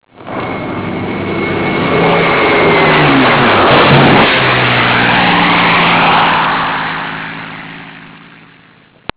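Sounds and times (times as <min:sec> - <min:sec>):
flyby: 0:00.1 - 0:08.9.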